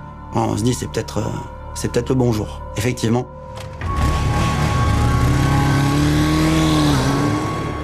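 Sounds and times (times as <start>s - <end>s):
speech: 0.3s - 3.7s
motorcycle engine revving at the foot of an apartment building: 3.8s - 7.8s.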